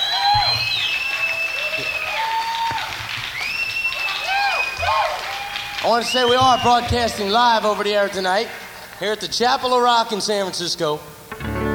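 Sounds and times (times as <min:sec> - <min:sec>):
cheers or whistles: 0:00.0 - 0:08.7
audience applause: 0:00.0 - 0:09.0
speech: 0:05.8 - 0:11.2.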